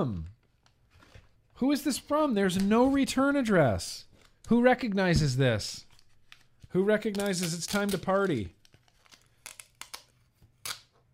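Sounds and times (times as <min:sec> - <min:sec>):
speech: 0:00.0 - 0:00.3, 0:01.6 - 0:05.9, 0:06.7 - 0:08.6
packaging crinkling: 0:05.8 - 0:11.0
tape tearing as a taped package is ripped open: 0:05.9 - 0:11.0.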